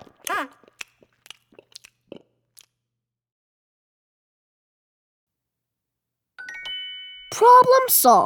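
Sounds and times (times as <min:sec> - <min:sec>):
crunchy chewing and munching: 0:00.0 - 0:02.8
brief tonal chime: 0:06.4 - 0:08.2
speech: 0:07.3 - 0:08.2.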